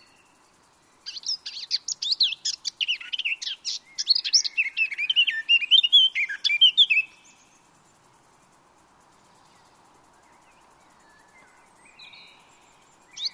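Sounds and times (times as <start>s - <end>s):
Eurasian blackcap Sylvia atricapilla singing: 1.1s - 7.3s, 13.2s - 13.3s.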